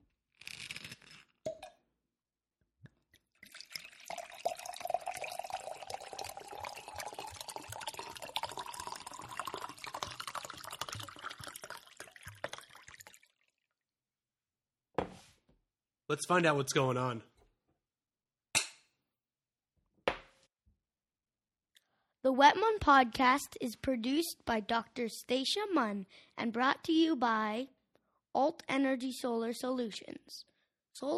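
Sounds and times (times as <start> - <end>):
wine pouring into a glass: 3.2 - 13.7
speech: 16.1 - 17.3, 22.4 - 27.8, 28.4 - 31.1.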